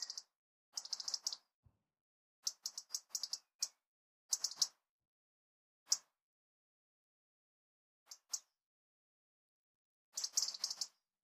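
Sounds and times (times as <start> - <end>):
European robin giving short sharp ticking calls: 0.0 - 1.5, 2.4 - 4.8, 5.9 - 6.1, 8.1 - 8.5, 10.1 - 11.0.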